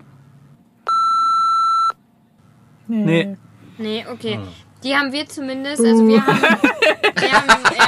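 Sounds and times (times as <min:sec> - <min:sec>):
electronic censor beep over a brand name: 0:00.9 - 0:02.0
speech: 0:02.9 - 0:07.8
laughter: 0:06.1 - 0:07.8.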